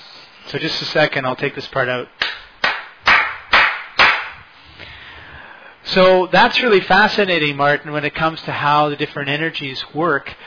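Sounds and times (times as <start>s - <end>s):
speech: 0.5s - 2.2s, 6.0s - 10.4s
hammer blows outside: 2.2s - 5.0s.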